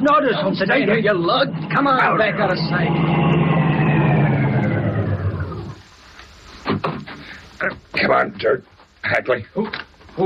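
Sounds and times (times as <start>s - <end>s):
speech: 0.0s - 3.6s, 7.6s - 10.2s
car engine roaring past: 0.7s - 6.0s.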